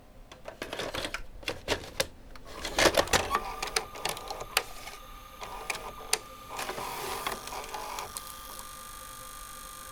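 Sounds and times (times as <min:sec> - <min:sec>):
VCR tape inserted with lid opened: 0:00.1 - 0:09.9.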